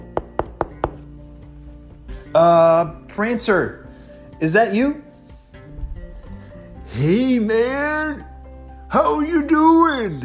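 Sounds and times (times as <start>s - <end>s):
knocking on an office door: 0.1s - 1.1s
speech: 2.3s - 3.8s, 4.4s - 5.0s, 7.0s - 8.3s, 8.9s - 10.2s.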